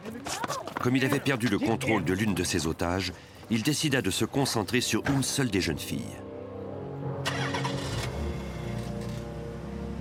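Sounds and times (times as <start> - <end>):
speech: 0.8 - 6.3
family car engine cranking and starting: 7.2 - 10.0.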